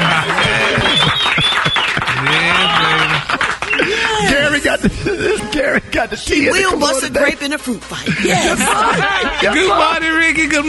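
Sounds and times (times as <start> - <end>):
person giving a long drawn-out vocal whoop: 0.0 - 4.5
studio audience applause: 0.0 - 4.6
laughter: 0.0 - 6.1, 8.0 - 10.2
speech: 4.7 - 10.6.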